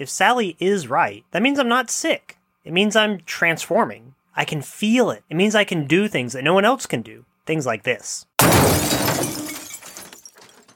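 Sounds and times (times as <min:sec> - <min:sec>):
speech: 0:00.0 - 0:08.9
large pane of glass shattering as a table smashes through a window: 0:08.4 - 0:10.7
glass shards falling and settling: 0:08.8 - 0:10.7.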